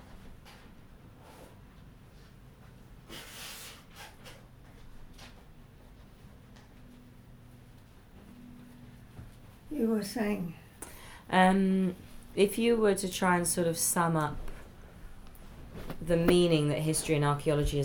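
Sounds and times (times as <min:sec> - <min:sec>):
low steady hum: 0:00.0 - 0:17.8
forceful nose blows into a tissue: 0:03.0 - 0:04.1
speech: 0:09.8 - 0:10.6, 0:11.3 - 0:14.5, 0:16.0 - 0:17.8.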